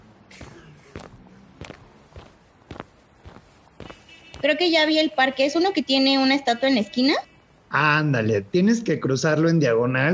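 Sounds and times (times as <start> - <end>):
footsteps of a person walking along city streets: 0.0 - 4.8
speech: 4.4 - 10.1.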